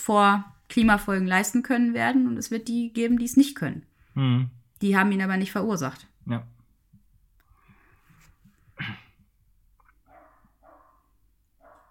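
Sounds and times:
speech: 0.0 - 6.5
neighbour's dog barking: 10.0 - 11.8.

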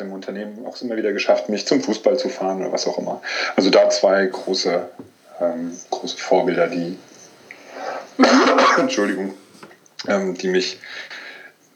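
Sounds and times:
speech: 0.0 - 7.1, 8.2 - 9.4, 10.0 - 11.2
person coughing in rough raspy bouts: 8.2 - 9.2.

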